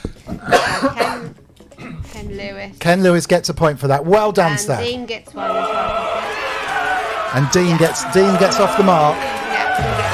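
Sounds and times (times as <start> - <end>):
person coughing: 0.3 - 2.2
speech: 2.4 - 6.5, 7.3 - 10.0.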